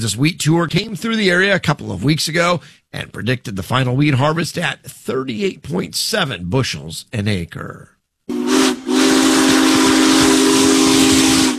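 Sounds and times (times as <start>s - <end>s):
speech: 0.0s - 8.0s
steam locomotive whistle: 8.3s - 11.5s.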